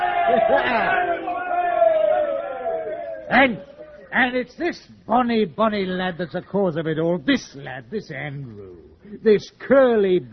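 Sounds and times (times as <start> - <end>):
speech: 0.0 - 1.3, 3.3 - 10.3
group of men cheering: 0.0 - 4.1
group of men shouting: 0.0 - 4.1.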